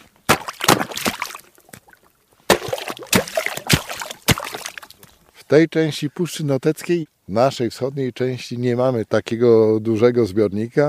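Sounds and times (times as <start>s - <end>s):
water splashing and sloshing beneath broken ice at an ice-covered reservoir bank: 0.0s - 5.3s
speech: 5.5s - 10.8s.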